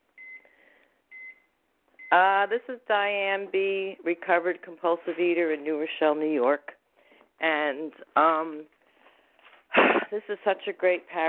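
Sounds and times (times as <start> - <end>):
electronic timer beeps while being set: 0.2 - 0.5, 1.1 - 2.2
speech: 2.1 - 6.8, 7.4 - 8.8, 9.8 - 11.2.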